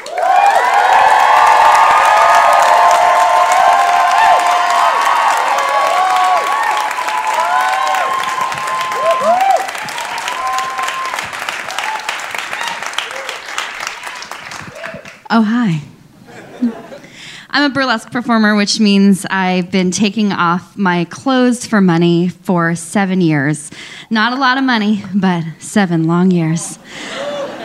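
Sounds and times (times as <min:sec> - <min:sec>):
crowd whoops and cheers at a live storytelling event: 0:00.0 - 0:15.2
large crowd applauding at a live storytelling event: 0:00.0 - 0:15.3
speech: 0:15.4 - 0:15.8, 0:17.6 - 0:26.8
laughter: 0:16.2 - 0:17.1, 0:26.6 - 0:27.6.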